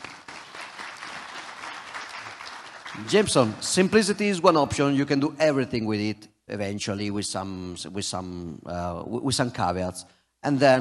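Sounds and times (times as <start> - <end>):
audience clapping at a talk: 0.0 - 4.3
speech: 3.0 - 10.8.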